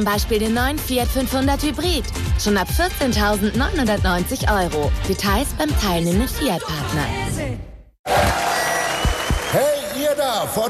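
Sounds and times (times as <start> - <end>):
speech: 0.0 - 8.5, 10.3 - 10.6
crowd cheering: 8.0 - 10.6
applause: 8.1 - 10.6.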